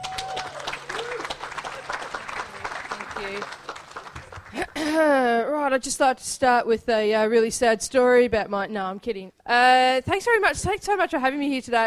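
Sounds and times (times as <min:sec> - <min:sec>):
audience applause at a live comedy event: 0:00.0 - 0:04.9
speech: 0:03.2 - 0:03.6, 0:05.0 - 0:11.8.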